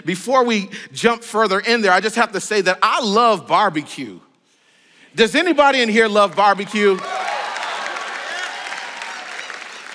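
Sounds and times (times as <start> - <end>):
speech: 0.0 - 4.3, 5.2 - 7.2
audience clapping: 6.1 - 9.9
crowd cheering and shouting: 6.7 - 9.9.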